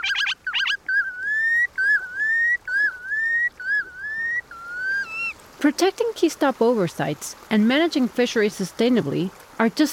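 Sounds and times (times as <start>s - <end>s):
Red Knot calls: 0.0s - 5.4s
speech: 5.6s - 9.9s.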